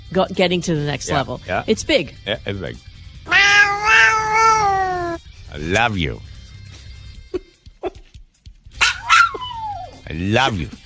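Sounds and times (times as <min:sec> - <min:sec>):
speech: 0:00.1 - 0:02.9, 0:05.5 - 0:06.3, 0:10.1 - 0:10.8
dog whining: 0:03.3 - 0:05.2, 0:08.8 - 0:10.0
dog barking: 0:08.8 - 0:09.8.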